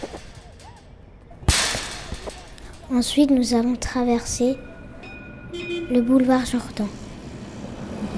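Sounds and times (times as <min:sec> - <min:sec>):
ball striking a wire mesh fence: 0:00.0 - 0:05.2
bright metallic rattle of wire mesh fence: 0:00.0 - 0:08.0
speech: 0:02.9 - 0:04.7, 0:05.9 - 0:07.0.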